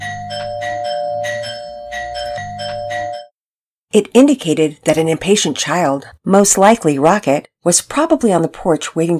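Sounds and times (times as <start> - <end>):
doorbell chiming: 0.0 - 3.3
speech: 3.9 - 9.1.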